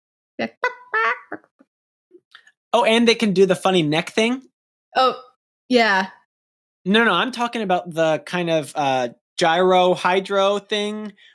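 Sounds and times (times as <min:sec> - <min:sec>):
person imitating chicken clucking: 0:00.4 - 0:01.4
speech: 0:00.4 - 0:01.4, 0:02.7 - 0:06.2, 0:06.8 - 0:11.3.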